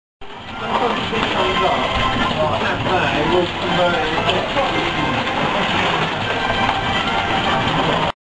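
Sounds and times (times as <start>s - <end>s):
pachinko machine: 0.2s - 8.1s.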